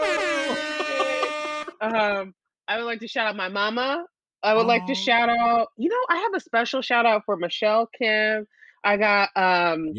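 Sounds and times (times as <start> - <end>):
air horn sound effect blaring: 0.0 - 2.1
laughter: 0.0 - 2.2, 4.6 - 5.5
speech: 1.8 - 9.9.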